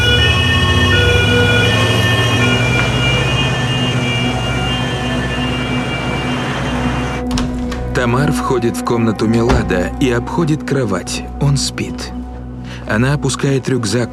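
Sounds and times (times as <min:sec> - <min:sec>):
ambulance siren wailing as it pulls away along a narrow street: 0:00.0 - 0:10.2
ambulance road rumble: 0:00.0 - 0:12.9
speech: 0:08.0 - 0:12.2, 0:12.9 - 0:14.1.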